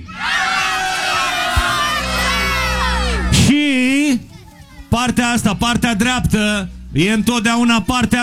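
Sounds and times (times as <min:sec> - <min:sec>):
large crowd shouting a chant: 0:00.1 - 0:03.5
speech: 0:05.0 - 0:08.2.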